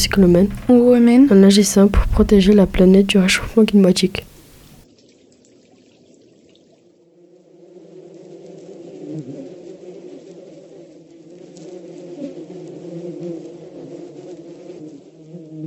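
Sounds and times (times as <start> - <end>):
speech: 0.0 - 4.3
many bees buzzing: 0.0 - 4.8.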